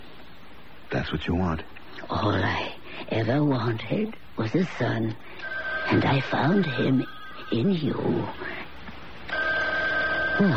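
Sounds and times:
low hum: 0:00.0 - 0:10.5
speech: 0:01.0 - 0:08.5, 0:10.4 - 0:10.5
telephone ringing with a steady electronic tone: 0:05.4 - 0:08.4, 0:09.3 - 0:10.5.

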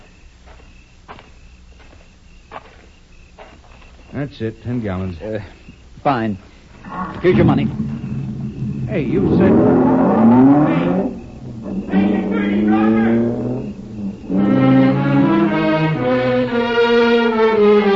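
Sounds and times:
speech: 0:04.2 - 0:08.0, 0:08.9 - 0:10.0
car engine revving as it drives away: 0:06.8 - 0:17.8.

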